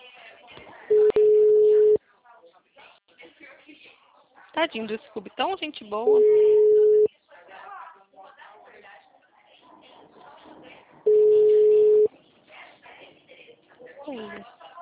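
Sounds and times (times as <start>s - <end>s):
steady telephone line tone after a dropped call: 0.9s - 2.0s, 6.1s - 7.1s, 11.1s - 12.1s
speech: 4.6s - 6.7s.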